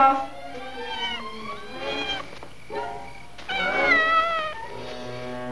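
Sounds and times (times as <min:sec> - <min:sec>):
speech: 0:00.0 - 0:00.4
cat meowing from up a tree: 0:00.0 - 0:02.3, 0:03.5 - 0:04.8.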